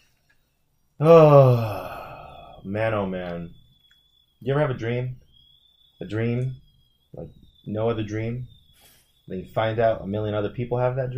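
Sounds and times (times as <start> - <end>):
speech: 1.0 - 1.7, 2.6 - 3.6, 4.4 - 5.2, 6.0 - 8.6, 9.3 - 11.1
deep breath released as a voiced sigh: 1.0 - 2.8.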